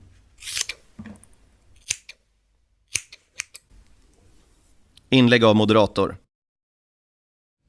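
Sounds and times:
scissors snipping through hair while cutting bangs: 0.4 - 0.8, 1.8 - 2.2, 2.9 - 3.6
speech: 5.1 - 6.2.

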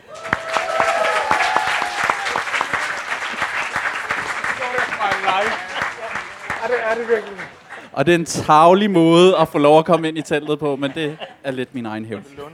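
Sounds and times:
faint voices and cheers: 0.0 - 2.5
audience applauding: 0.0 - 8.0
laughter: 4.0 - 12.5
speech: 6.9 - 12.5.

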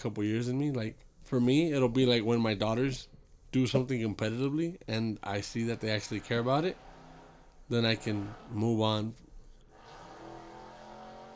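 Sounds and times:
speech: 0.0 - 6.9, 7.7 - 9.2
car speeding past outside: 5.5 - 8.8, 9.7 - 11.3.

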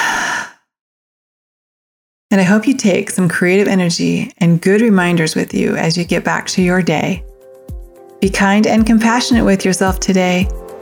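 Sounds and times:
slow deep breath in and out: 0.0 - 0.7
speech: 2.3 - 7.3, 8.2 - 10.6.

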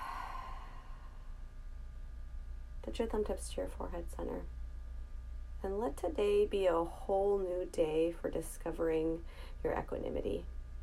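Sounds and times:
slow soft exhale at the end of a yoga practice: 0.0 - 1.4
speech: 2.8 - 4.6, 5.6 - 10.6.

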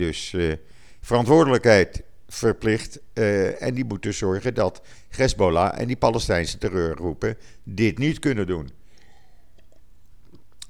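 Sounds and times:
speech: 0.0 - 8.8
person sipping water: 8.8 - 10.6
soft wet mouth clicks: 8.8 - 10.6
person swallowing: 8.9 - 10.6.

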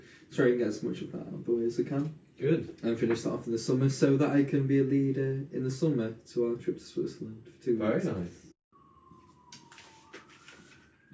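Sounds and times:
speech: 0.3 - 8.4
ambulance siren passing outside a large hospital: 8.7 - 11.1
rustling and shuffling: 9.1 - 11.1.

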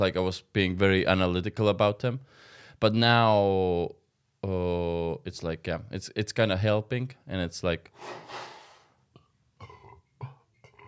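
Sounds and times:
speech: 0.0 - 8.5
person burping: 9.1 - 10.8.

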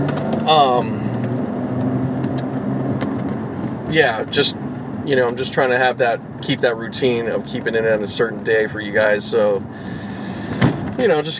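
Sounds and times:
low rumble of road traffic and vehicle engines: 0.0 - 11.3
speech: 0.5 - 1.0, 3.9 - 10.0, 11.0 - 11.3.

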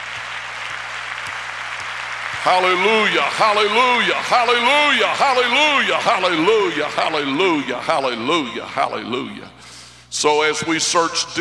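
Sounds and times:
congregation applauding together: 0.0 - 7.1
louder rhythmic clapping beats through the crowd noise: 0.0 - 11.3
speech: 2.4 - 11.3.

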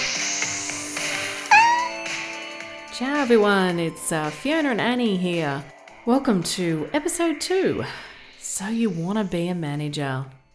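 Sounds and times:
black rescue cat meowing: 1.5 - 2.0
speech: 3.0 - 10.4.

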